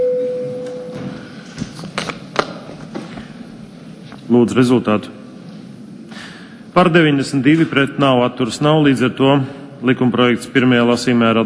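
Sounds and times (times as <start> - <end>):
parliament chamber voting bell signal electronic tone: 0.0 - 1.0
speech: 4.3 - 5.2, 6.8 - 11.4.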